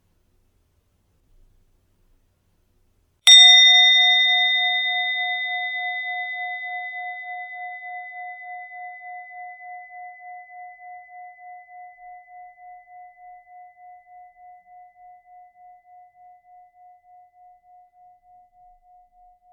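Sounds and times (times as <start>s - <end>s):
meditation bell ringing: 3.3s - 17.6s.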